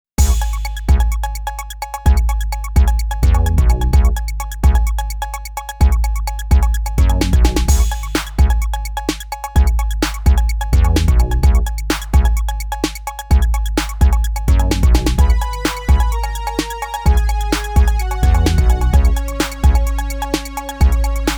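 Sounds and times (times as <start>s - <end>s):
hip hop music: 0.2s - 21.3s.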